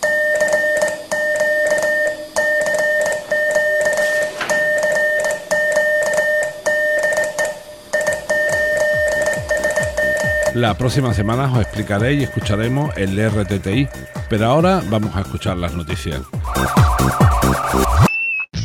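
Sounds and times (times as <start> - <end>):
Morse code telegraphy beeps received on amateur radio: 0.0 - 15.7
fainter higher Morse tone keyed alongside: 0.0 - 18.1
hissing static on amateur radio: 10.4 - 15.7
speech: 10.6 - 18.1.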